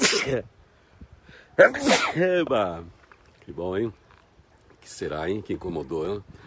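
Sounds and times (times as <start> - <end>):
loud sneeze: 0.0 - 0.4, 1.6 - 2.2
speech: 0.2 - 0.6, 1.6 - 4.0, 4.8 - 6.4.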